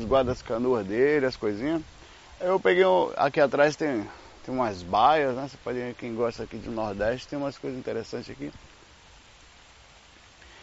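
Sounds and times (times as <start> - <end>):
speech: 0.0 - 8.7
heavy rain over the sea at a beach in the Nordeste: 0.0 - 10.6.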